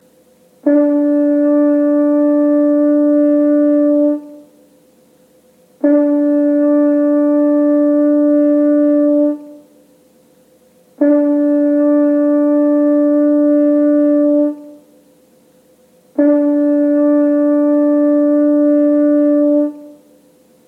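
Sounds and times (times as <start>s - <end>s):
french horn playing note A: 0.6s - 4.7s, 5.8s - 9.8s, 11.0s - 15.0s, 16.1s - 20.2s.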